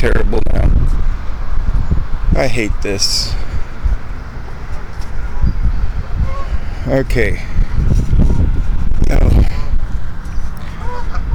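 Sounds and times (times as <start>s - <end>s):
heavy wind rumble: 0.0s - 11.3s
speech: 2.4s - 3.4s, 6.9s - 7.5s
geese honking while swimming beneath a wooden boardwalk: 3.1s - 6.8s, 9.6s - 11.3s.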